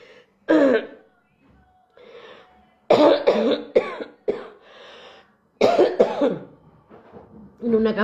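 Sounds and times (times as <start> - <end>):
faint breathing: 0.0 - 0.4, 2.0 - 2.7, 4.6 - 5.5
person with a heavy cough coughing harshly: 0.5 - 1.0, 2.9 - 4.6, 5.6 - 6.5
speech: 7.7 - 8.0.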